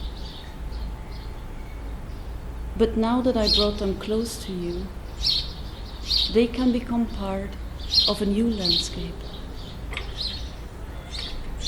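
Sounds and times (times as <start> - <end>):
birds chirping: 0.0 - 11.6
speech: 2.8 - 5.4, 6.3 - 9.2.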